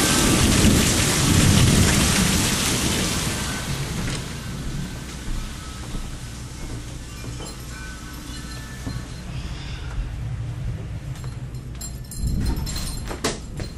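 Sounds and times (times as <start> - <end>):
deep rolling rumble of thunder: 0.0 - 5.0, 10.0 - 13.0
heavy rain during a rainstorm: 0.0 - 11.0.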